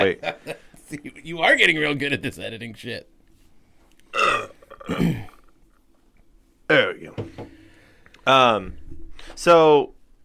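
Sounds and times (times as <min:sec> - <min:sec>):
speech: 0:00.0 - 0:03.2, 0:04.1 - 0:05.3, 0:06.7 - 0:07.5, 0:08.2 - 0:10.0
loud burps: 0:04.1 - 0:05.6.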